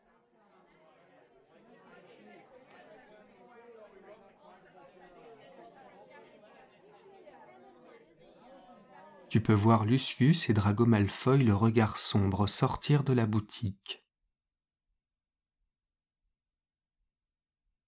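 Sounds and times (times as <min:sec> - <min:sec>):
bustling chatter of a crowd queuing for a book signing in a bookshop: 0:00.0 - 0:13.7
speech: 0:09.3 - 0:14.0.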